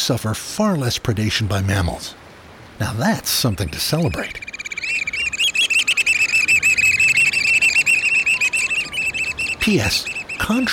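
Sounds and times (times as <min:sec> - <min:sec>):
speech: 0:00.0 - 0:02.2, 0:02.8 - 0:04.5, 0:09.6 - 0:10.7
black oystercatchers giving whistling calls: 0:03.4 - 0:10.7.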